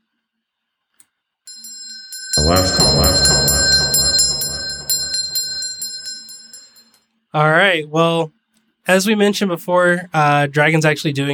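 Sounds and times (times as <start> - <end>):
alarm bell ringing for last call: 1.5 - 6.8
speech: 2.4 - 3.6, 7.4 - 11.3
crowd noise: 2.4 - 5.9.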